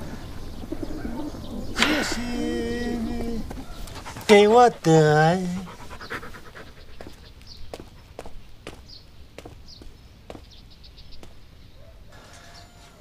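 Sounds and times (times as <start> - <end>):
speech: 2.0 - 2.7, 4.3 - 5.7
small dog panting: 3.4 - 8.8.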